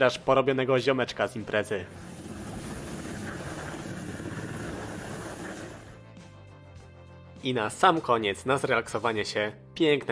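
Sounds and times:
speech: 0.0s - 2.1s, 7.4s - 10.1s
helicopter flying in windy weather lifting a damaged helicopter from a beach: 1.8s - 6.0s.

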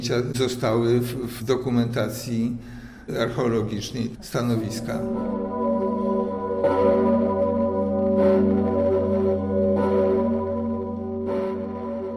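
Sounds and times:
speech: 0.0s - 5.6s
church bells ringing: 4.5s - 12.1s.

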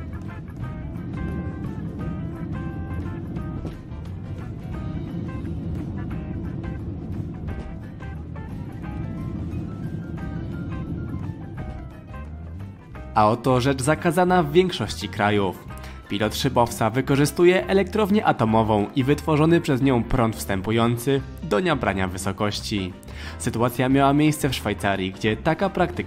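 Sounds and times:
Boeing 767 jet engine roar during takeoff: 0.0s - 14.2s
speech: 13.2s - 26.0s.

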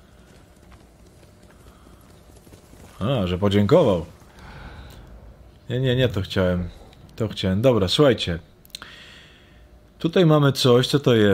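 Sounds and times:
horse hooves clip-clopping in a video game: 0.0s - 4.5s
video game noise: 0.0s - 11.3s
speech: 3.0s - 4.2s, 5.7s - 8.5s, 10.0s - 11.3s.

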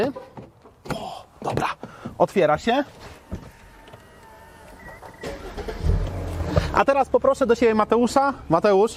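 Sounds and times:
speech: 0.0s - 0.3s, 1.4s - 3.5s, 6.7s - 8.9s
car engine starting: 2.9s - 7.8s.

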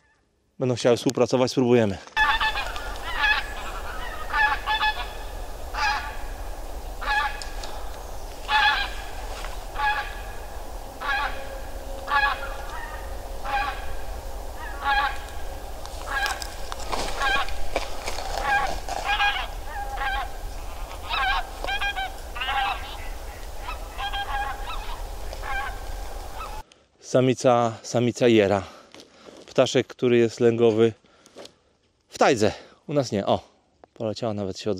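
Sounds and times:
speech: 0.6s - 2.2s, 27.1s - 28.8s, 29.6s - 31.0s, 32.2s - 34.7s
flock of geese honking while flying overhead: 2.2s - 26.6s.

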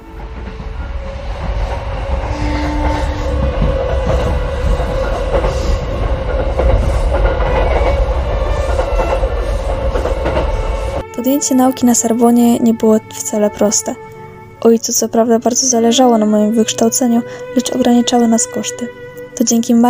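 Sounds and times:
train running on rails: 0.0s - 19.8s
faint clickety-clack of train wheels: 1.4s - 10.7s
speech: 11.3s - 19.8s.

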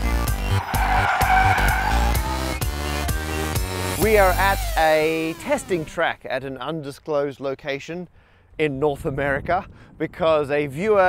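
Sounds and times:
car skidding out of control on a testing track: 0.1s - 4.0s
shrill tire squeal: 0.2s - 3.6s
speech: 4.1s - 11.0s.

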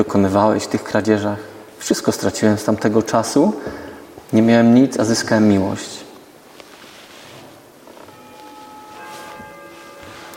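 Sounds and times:
speech: 0.0s - 6.0s
steady hissy background: 0.0s - 10.3s
bell ringing: 8.0s - 10.3s.

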